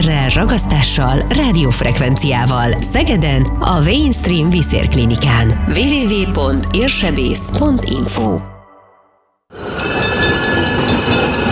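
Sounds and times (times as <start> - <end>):
tram rumbling on rails with metallic whine: 0.0 - 8.2, 9.5 - 11.5
speech: 0.0 - 8.5.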